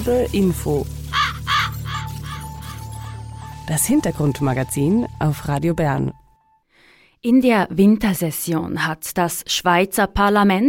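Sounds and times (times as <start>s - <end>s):
speech: 0.0s - 1.0s, 3.7s - 6.2s, 7.2s - 10.6s
raven cawing: 1.0s - 3.6s.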